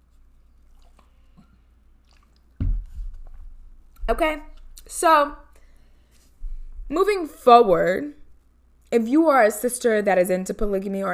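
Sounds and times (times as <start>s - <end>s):
person drinking water with gulping and swallowing: 0.6s - 4.8s
speech: 4.1s - 5.4s, 6.9s - 8.2s, 8.9s - 11.1s.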